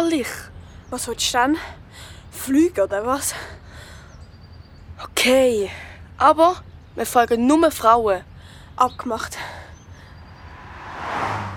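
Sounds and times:
speech: 0.1 - 3.6, 5.0 - 9.6
car passing by: 10.1 - 11.5
low engine noise: 10.2 - 11.5.

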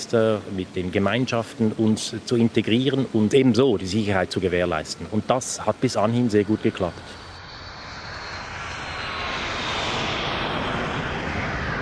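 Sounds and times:
speech: 0.0 - 7.2
jet aircraft engine roaring: 4.8 - 11.8.

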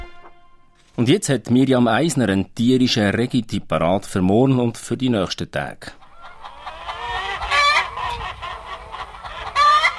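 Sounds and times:
speech: 1.0 - 6.0
chickens clucking and squawking: 5.8 - 9.9.

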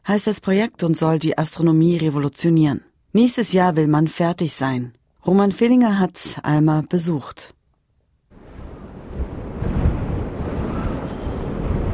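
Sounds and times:
speech: 0.1 - 7.6
strong icy wind roaring across open ground on a high plateau: 8.3 - 11.9.

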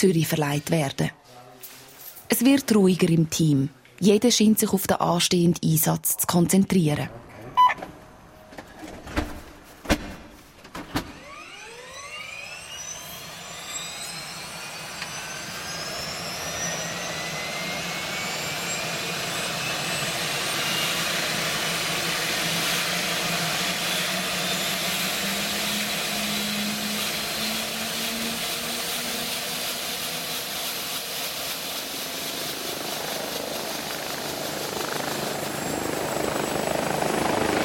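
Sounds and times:
speech: 0.0 - 1.4, 2.3 - 7.2
helicopter flying overhead with rotor and engine roar: 11.2 - 37.6.

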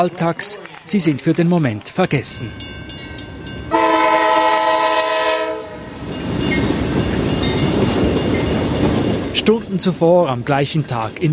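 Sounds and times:
speech: 0.0 - 3.0, 9.4 - 11.3
train rolling through Bowling Green: 0.6 - 11.3
loud train horn: 3.7 - 5.9.

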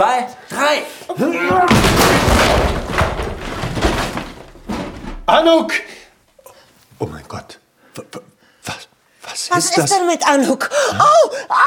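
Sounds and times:
speech: 0.2 - 1.7, 5.3 - 6.0, 7.0 - 8.3, 9.4 - 11.6
door being broken open: 1.4 - 5.6
loud splintering, banging and rattling of door: 1.4 - 5.6.

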